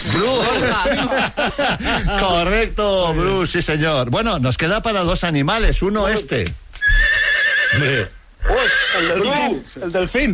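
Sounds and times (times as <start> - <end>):
laughter: 0.1 - 2.6
speech: 0.3 - 7.1, 7.7 - 10.3
horse whinnying: 6.8 - 9.6
horse snorting: 6.9 - 9.2.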